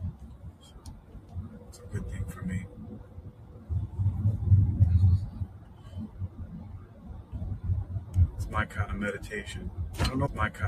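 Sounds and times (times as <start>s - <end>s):
road rumble inside a moving car: 0.0s - 10.6s
speech: 1.8s - 3.2s, 8.6s - 10.6s.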